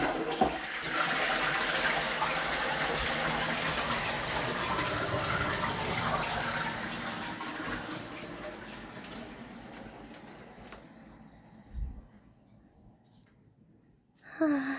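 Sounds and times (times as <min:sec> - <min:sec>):
toilet flushing: 0:00.0 - 0:11.7.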